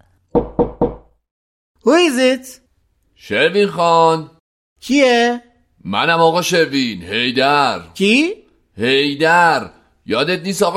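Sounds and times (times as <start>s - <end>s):
soft cautious knocks on a front entrance door: 0.4s - 1.1s
speech: 2.0s - 2.6s, 3.2s - 10.7s.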